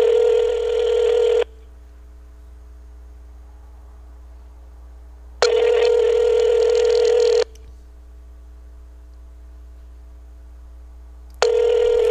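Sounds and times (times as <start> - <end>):
telephone ringback tone through a speakerphone: 0.0 - 1.5, 5.4 - 7.4, 11.4 - 12.0
steady low telephone line hum: 0.0 - 12.0.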